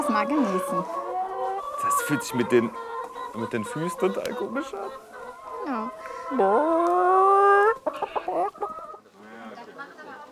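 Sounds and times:
chicken squawking and clucking: 0.0s - 9.1s
speech: 0.2s - 1.0s, 1.8s - 7.2s.

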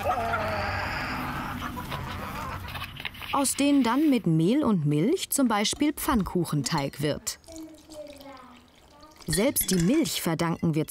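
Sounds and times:
chickens clucking in a busy coop: 0.0s - 3.2s
speech: 3.3s - 7.4s, 9.3s - 10.8s.

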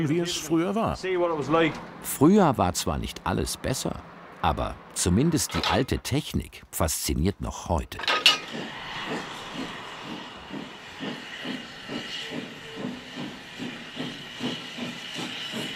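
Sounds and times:
speech: 0.0s - 9.8s
steam locomotive hissing: 8.1s - 15.7s.

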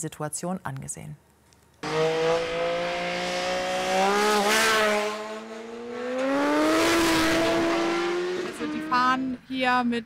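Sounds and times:
speech: 0.0s - 1.3s, 9.2s - 10.0s
car engines roaring as cars speed over 100 km/h into a bend and overtake: 1.8s - 9.5s.

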